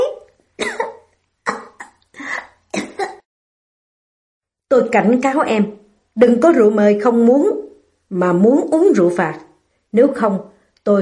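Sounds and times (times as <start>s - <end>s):
woman coughing after a pill catches in her throat: 0.6s - 3.2s
speech: 4.7s - 10.9s.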